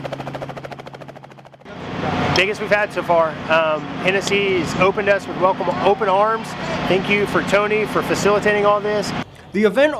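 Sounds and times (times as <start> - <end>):
helicopter rotor thumping: 0.0 - 5.6
low helicopter engine drone: 0.0 - 9.6
speech: 2.4 - 9.9.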